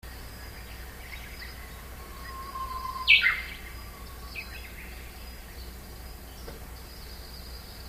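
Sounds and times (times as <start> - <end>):
low background hum: 0.0 - 7.8
Japanese bush warbler soft held whistle: 1.3 - 5.0.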